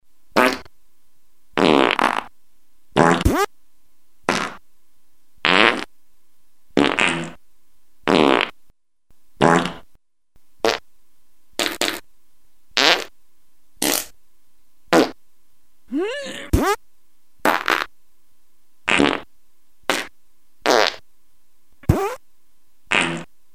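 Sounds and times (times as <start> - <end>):
fart montage: 0.4 - 0.7, 1.6 - 2.3, 3.0 - 3.5, 4.3 - 4.6, 5.4 - 5.9, 6.8 - 7.4, 8.1 - 8.6, 9.4 - 9.9, 10.6 - 10.8, 11.6 - 12.0, 12.8 - 13.1, 13.8 - 14.2, 14.9 - 15.2, 16.2 - 16.8, 17.4 - 17.9, 18.9 - 19.3, 19.9 - 21.0, 21.8 - 22.2, 22.9 - 23.3.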